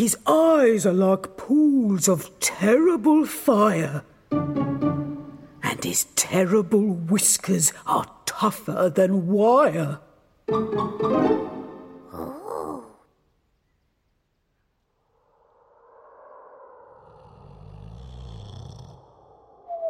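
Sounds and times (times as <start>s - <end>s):
speech: 0.0s - 4.1s, 5.8s - 11.5s, 12.1s - 12.8s
deep growly snore from a large monster: 16.9s - 19.7s.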